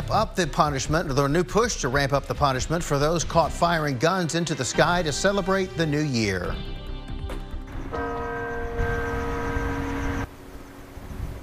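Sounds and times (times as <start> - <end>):
speech: 0.1 - 6.8
Catholic church bells ringing: 7.9 - 10.3.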